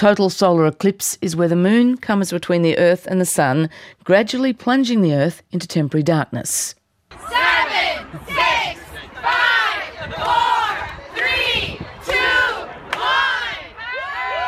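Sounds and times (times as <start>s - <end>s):
speech: 0.0s - 9.4s
large crowd shouting and whooping at eclipse totality: 7.1s - 14.4s.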